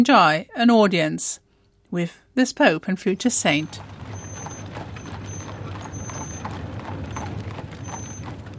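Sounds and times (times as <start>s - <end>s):
speech: 0.0s - 4.0s
horse hooves clattering on cobblestones: 3.3s - 8.5s
constant low rumble: 3.4s - 8.5s.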